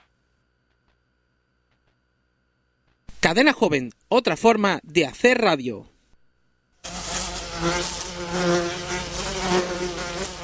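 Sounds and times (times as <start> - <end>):
speech: 3.2 - 5.9, 7.6 - 8.8
mosquito buzzing: 6.8 - 10.4.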